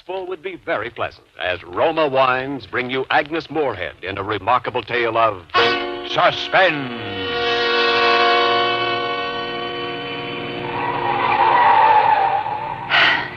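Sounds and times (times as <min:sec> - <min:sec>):
speech: 0:00.1 - 0:07.3
car engine whining speeding up a steep winding mountain road: 0:07.4 - 0:13.3.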